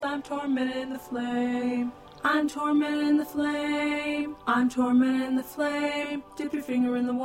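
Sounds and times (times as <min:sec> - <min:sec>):
tenor voice singing in SATB choir: 0:00.0 - 0:07.2.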